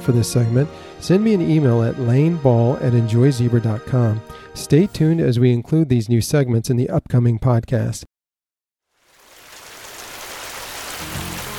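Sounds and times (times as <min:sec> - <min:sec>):
speech: 0:00.0 - 0:08.1
rain falling: 0:08.9 - 0:11.5.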